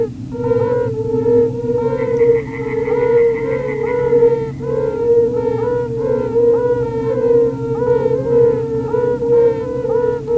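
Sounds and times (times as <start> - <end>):
Yellow-bellied toads Bombina variegata calling in chorus: 0.0 - 10.3
low hum: 0.0 - 10.3.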